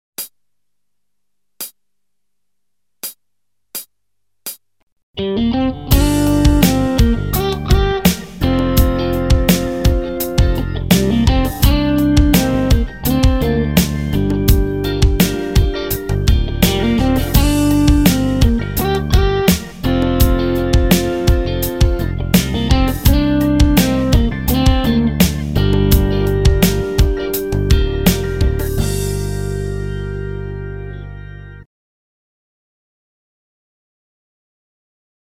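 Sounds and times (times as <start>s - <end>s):
guitar playing pentatonic minor scale: 5.2s - 31.7s.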